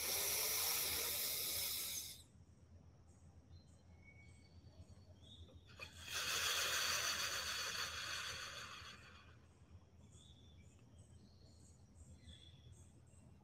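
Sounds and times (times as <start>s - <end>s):
deep breath during a guided grounding exercise: 0.0s - 2.2s, 5.8s - 9.4s.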